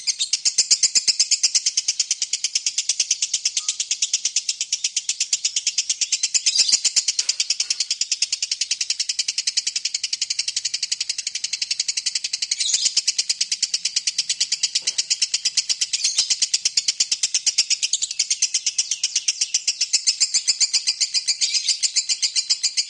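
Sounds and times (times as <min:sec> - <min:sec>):
lovebird ngekek song, long continuous chattering trill: 0:00.0 - 0:22.8.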